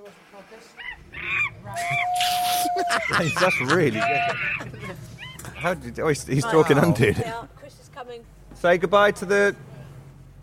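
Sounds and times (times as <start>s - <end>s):
speech: 0.1s - 5.0s, 5.6s - 9.7s
person doing a monkey impression with hooting and screeching calls: 0.8s - 5.8s
laughter: 1.0s - 7.5s.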